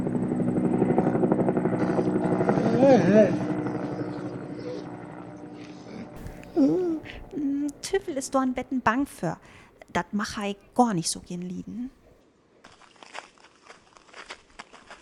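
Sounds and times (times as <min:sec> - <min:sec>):
helicopter flying overhead: 0:00.0 - 0:11.9
speech: 0:02.9 - 0:03.4, 0:08.0 - 0:12.0
child's voice: 0:03.8 - 0:05.0, 0:05.6 - 0:08.6.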